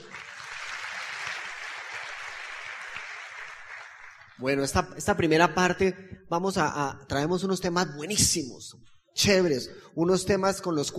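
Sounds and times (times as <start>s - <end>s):
audience applauding its leaders: 0.0s - 4.6s
speech: 4.4s - 10.9s.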